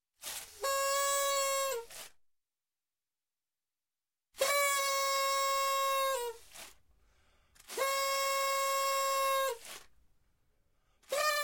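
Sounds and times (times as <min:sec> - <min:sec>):
party noisemaker horn blowing: 0:00.3 - 0:02.1, 0:04.4 - 0:06.8, 0:07.6 - 0:09.9, 0:11.0 - 0:11.4.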